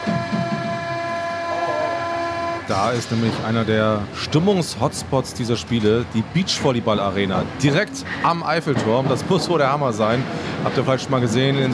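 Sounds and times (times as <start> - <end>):
Paris metro subway train humming with a thin whine: 0.0 - 11.7
speech: 2.7 - 11.7.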